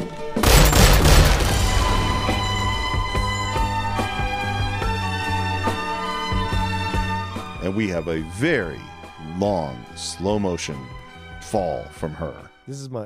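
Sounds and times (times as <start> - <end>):
gunshot in a film scene: 0.4 - 3.7
low drone: 0.7 - 7.0
speech: 7.7 - 13.0.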